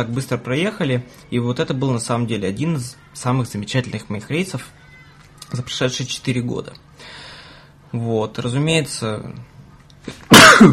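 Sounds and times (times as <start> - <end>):
speech: 0.0 - 4.8, 5.5 - 7.3, 7.9 - 10.7
person sneezing: 10.1 - 10.7.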